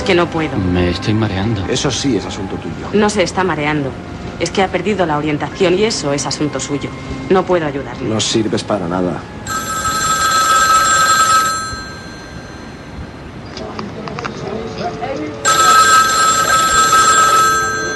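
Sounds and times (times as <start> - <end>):
speech: 0.0 - 9.7
loud metallic telephone bell ringing: 9.5 - 13.2, 15.4 - 17.9.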